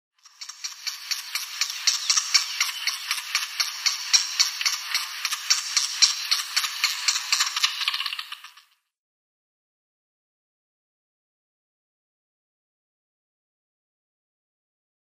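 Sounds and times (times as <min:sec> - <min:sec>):
Grey-headed Woodpecker nestling calling: 0:00.2 - 0:08.6.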